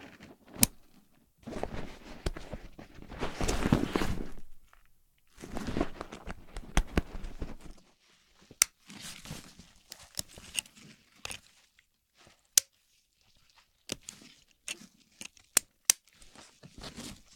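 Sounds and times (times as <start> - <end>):
buckle snapping and unsnapping: 0.5 - 7.8, 8.5 - 11.5, 13.9 - 16.4.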